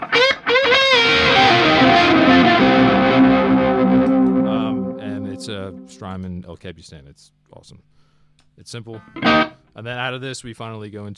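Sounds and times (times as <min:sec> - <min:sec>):
electric guitar through a multi-head tape echo: 0:00.0 - 0:06.1, 0:08.9 - 0:09.6
speech: 0:06.0 - 0:08.0, 0:08.6 - 0:11.1.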